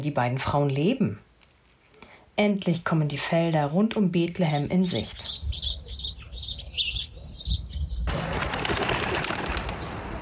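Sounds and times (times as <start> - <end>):
speech: 0.0 - 1.3, 2.4 - 5.8
large flock of birds chattering over harvest fields: 4.4 - 10.2.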